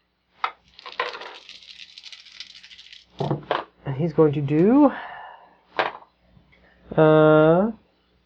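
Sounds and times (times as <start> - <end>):
dice clattering on a hard table: 0.5 - 3.6
speech: 4.0 - 5.1, 7.0 - 7.8.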